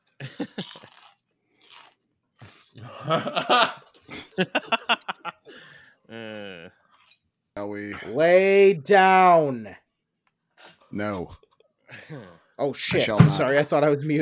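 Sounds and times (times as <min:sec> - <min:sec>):
crunching ridged potato chips being chewed: 0:00.0 - 0:02.7
laughter: 0:00.2 - 0:00.9, 0:02.8 - 0:06.7
speech: 0:03.1 - 0:03.8, 0:04.4 - 0:04.8, 0:08.1 - 0:09.8, 0:11.0 - 0:11.4, 0:12.6 - 0:14.2.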